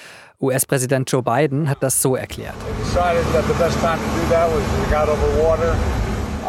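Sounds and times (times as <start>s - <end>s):
speech: 0.4s - 6.4s
jet aircraft turbines roaring: 2.5s - 6.4s.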